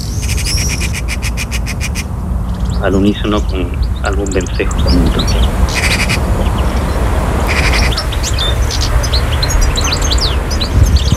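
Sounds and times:
Eurasian magpie chattering call: 0:00.0 - 0:02.1, 0:04.3 - 0:10.5
low outdoor rumble: 0:00.0 - 0:11.1
speech: 0:02.8 - 0:05.8.

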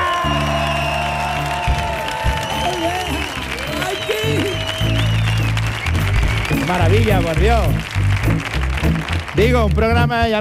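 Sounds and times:
audience whoops: 0:00.0 - 0:06.6
live audience cheering and applauding in an auditorium: 0:00.0 - 0:10.2
speech: 0:06.7 - 0:08.0, 0:09.4 - 0:10.3.

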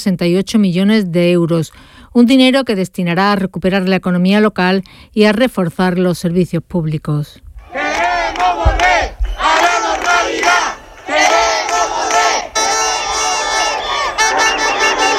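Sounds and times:
speech: 0:00.0 - 0:08.7
crowd of protesters shouting and chanting in the streets at night: 0:07.6 - 0:15.1.

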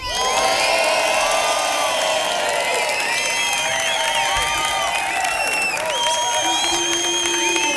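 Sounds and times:
large audience shouting and cheering: 0:00.0 - 0:07.7
scattered clapping: 0:00.0 - 0:07.7.

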